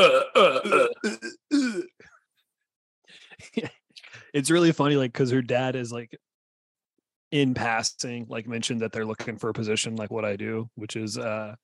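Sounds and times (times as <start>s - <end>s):
speech: 0.0s - 1.9s, 3.4s - 6.3s, 7.3s - 11.6s
voice imitating gagging or retching: 0.0s - 1.9s.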